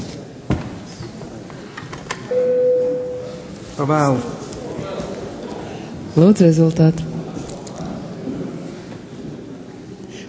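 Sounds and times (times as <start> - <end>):
low murmur of a parliamentary chamber: 0.0 - 10.2
electric bell ringing in a parliamentary chamber to call a vote: 2.3 - 3.6
speech: 3.8 - 4.4, 6.1 - 7.1.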